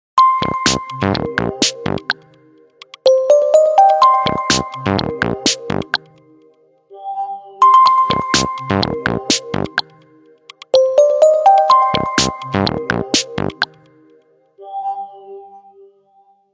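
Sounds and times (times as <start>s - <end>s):
digital mobile phone tick tone: 0.2s - 6.1s, 7.6s - 13.8s.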